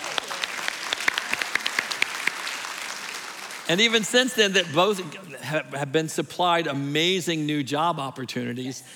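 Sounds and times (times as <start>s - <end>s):
audience clapping: 0.0s - 5.0s
speech: 3.7s - 8.9s.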